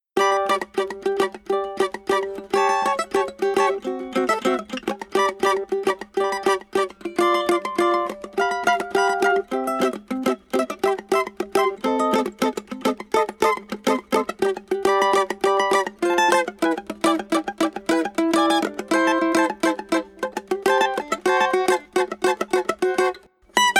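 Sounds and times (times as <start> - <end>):
cavaquinho bandola playing: 0.2 - 23.7.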